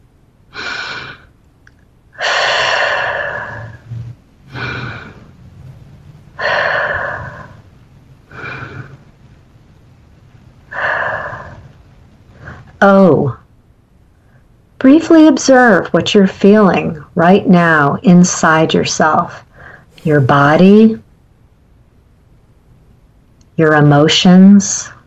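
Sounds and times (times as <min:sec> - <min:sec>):
person taking slow deep breaths during a guided mindfulness practice: 0:00.5 - 0:01.3, 0:02.2 - 0:05.7, 0:06.3 - 0:07.7, 0:08.3 - 0:09.2, 0:10.7 - 0:12.8, 0:19.5 - 0:20.4
speech: 0:15.0 - 0:21.0, 0:23.6 - 0:25.0.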